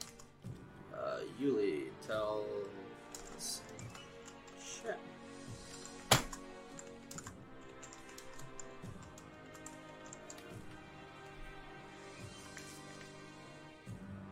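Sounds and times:
typing on a computer keyboard: 0:00.0 - 0:00.3, 0:03.1 - 0:04.6, 0:05.7 - 0:10.6
man talking: 0:00.9 - 0:03.8.

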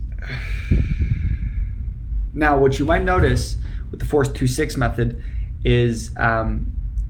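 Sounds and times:
slow controlled exhale through the mouth during a breathing exercise: 0:00.1 - 0:01.9
speech: 0:02.4 - 0:06.8.

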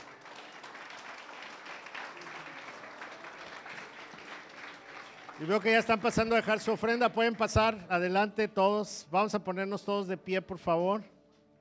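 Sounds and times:
audience applause: 0:00.0 - 0:07.8
speech: 0:05.4 - 0:11.1.

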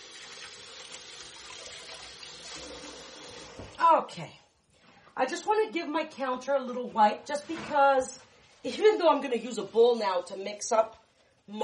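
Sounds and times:
tap water running over hands being washed at a kitchen sink: 0:00.0 - 0:03.8
speech: 0:03.8 - 0:04.4, 0:05.2 - 0:11.6.

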